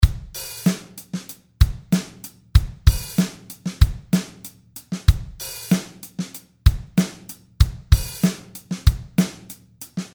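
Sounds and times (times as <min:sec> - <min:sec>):
hip hop drum beat: 0:00.0 - 0:10.1.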